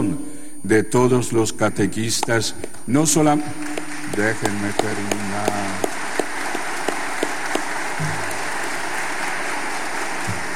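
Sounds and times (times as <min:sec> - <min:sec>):
speech: 0:00.1 - 0:05.9
congregation applauding in a reverberant church: 0:03.6 - 0:10.5.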